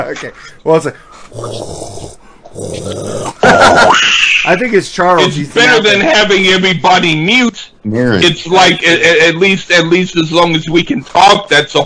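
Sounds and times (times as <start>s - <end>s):
speech: 0.0s - 11.8s
heavy breathing into a microphone: 0.3s - 1.5s.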